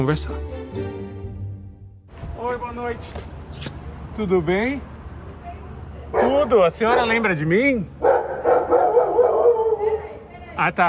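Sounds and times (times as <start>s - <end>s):
speech: 0.0s - 1.0s, 2.4s - 4.9s, 6.3s - 8.0s, 10.6s - 10.8s
dog barking with whiny yips: 6.1s - 7.3s, 8.0s - 10.2s.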